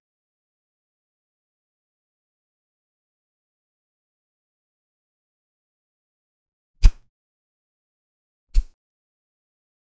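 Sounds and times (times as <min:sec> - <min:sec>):
single sword swing: 0:06.8 - 0:07.1, 0:08.6 - 0:08.8.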